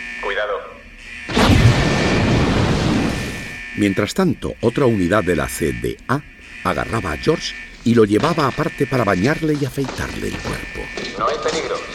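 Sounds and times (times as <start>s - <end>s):
speech: 0.2s - 0.8s, 3.8s - 11.9s
bomb disposal unit controlled explosion of a sock: 1.3s - 3.6s.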